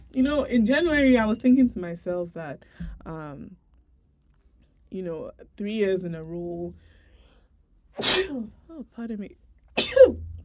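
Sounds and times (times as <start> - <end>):
speech: 0.1 - 3.6, 4.9 - 7.0, 8.0 - 10.3
person sneezing after swimming: 8.0 - 8.4, 9.8 - 10.2.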